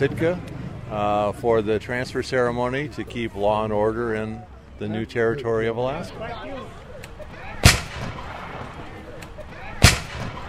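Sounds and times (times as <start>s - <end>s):
speech: 0.0s - 6.8s
musket shots fired by infantry reenactors testing muskets: 7.6s - 8.9s, 9.8s - 10.4s.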